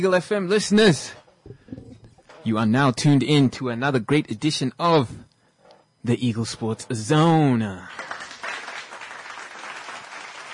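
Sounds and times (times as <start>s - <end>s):
speech: 0.0s - 1.6s, 2.4s - 5.3s, 6.0s - 8.1s
applause during a sports radio show: 7.8s - 10.5s.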